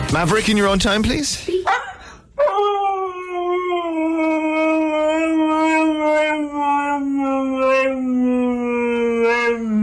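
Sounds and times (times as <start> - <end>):
speech: 0.1 - 1.9
husky howling with a rich harmonic tone: 2.4 - 9.8.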